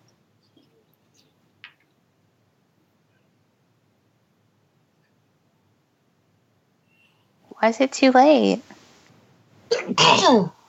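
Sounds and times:
speech: 0:07.6 - 0:08.8, 0:09.9 - 0:10.6
loud sneeze: 0:09.7 - 0:10.6.

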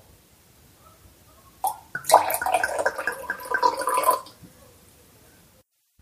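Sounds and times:
tea pouring into a cup: 0:01.6 - 0:04.4.

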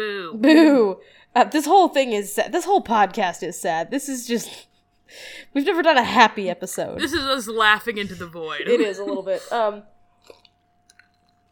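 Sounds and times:
speech: 0:00.0 - 0:10.4
person swallowing an ice cube: 0:10.2 - 0:11.5.

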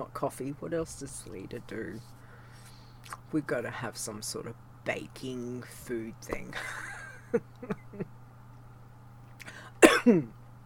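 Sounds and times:
speech: 0:00.0 - 0:02.2, 0:03.0 - 0:08.1, 0:10.0 - 0:10.4
faint low hum: 0:00.0 - 0:10.6
person coughing: 0:09.4 - 0:10.4.

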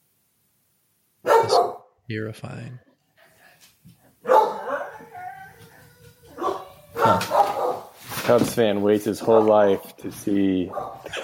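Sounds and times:
dog barking: 0:01.2 - 0:01.9, 0:04.2 - 0:05.6, 0:06.3 - 0:08.0, 0:09.2 - 0:09.9, 0:10.7 - 0:11.2
speech: 0:02.1 - 0:02.9, 0:08.3 - 0:11.2
dog whining howl: 0:04.3 - 0:07.9.

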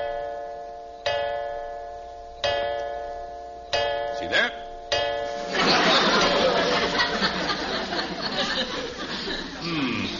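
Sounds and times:
clock ticking with ringing metallic resonance after being set: 0:00.0 - 0:05.3
laughter: 0:05.4 - 0:10.1.

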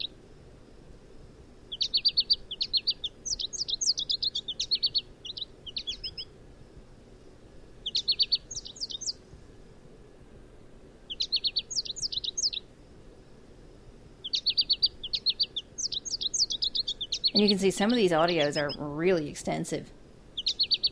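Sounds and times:
faint low hum: 0:00.0 - 0:20.9
American goldfinch song: 0:01.7 - 0:06.3, 0:07.8 - 0:09.2, 0:11.1 - 0:12.7, 0:14.2 - 0:20.9
speech: 0:17.4 - 0:20.0.

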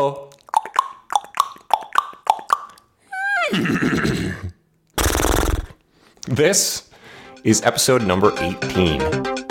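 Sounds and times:
speech: 0:00.0 - 0:00.2, 0:06.3 - 0:09.4
man's tongue clicks imitating hooves: 0:00.2 - 0:02.9
man imitating a horse whinny: 0:03.2 - 0:05.8
man snorting in horse imitation: 0:03.6 - 0:05.8.

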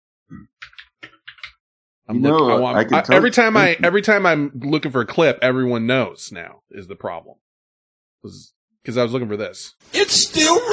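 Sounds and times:
speech: 0:00.3 - 0:00.6, 0:02.1 - 0:07.4, 0:08.2 - 0:10.7
sharp computer keyboard clacks: 0:00.6 - 0:01.6.

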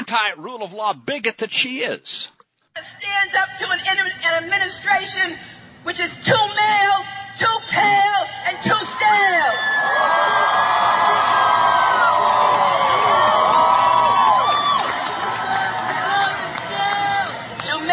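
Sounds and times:
speech: 0:00.1 - 0:11.4
scattered individual whoops and shouts: 0:08.6 - 0:17.4
large crowd cheering and applauding: 0:08.8 - 0:17.8.

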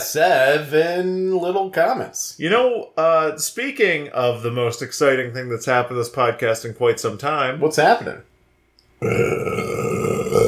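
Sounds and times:
speech: 0:00.1 - 0:08.3, 0:09.0 - 0:10.0
person burping: 0:09.0 - 0:10.4.

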